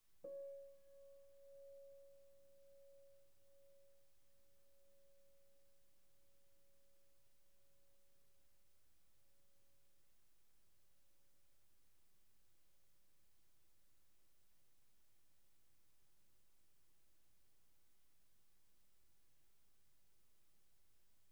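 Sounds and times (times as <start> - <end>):
soft piano note Db5: 0.2 - 3.9.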